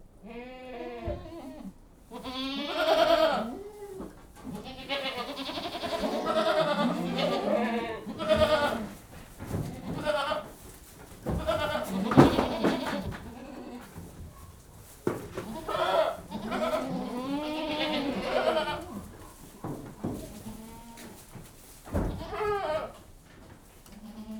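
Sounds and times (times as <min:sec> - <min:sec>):
several goats bleating while being fed: 0:00.2 - 0:10.6, 0:11.2 - 0:14.0, 0:15.4 - 0:19.2, 0:20.1 - 0:21.2, 0:21.9 - 0:23.0, 0:23.9 - 0:24.3.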